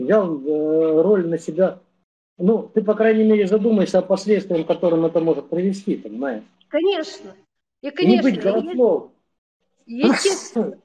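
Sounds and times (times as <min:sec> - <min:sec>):
speech: 0:00.0 - 0:09.2, 0:09.9 - 0:10.8
sneeze: 0:10.0 - 0:10.6.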